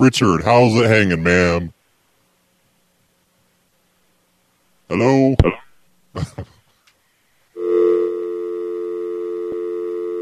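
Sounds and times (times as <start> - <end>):
speech: 0.0 - 1.8, 4.9 - 5.6, 6.2 - 6.5
telephone line tone after the other party hung up: 7.6 - 10.2.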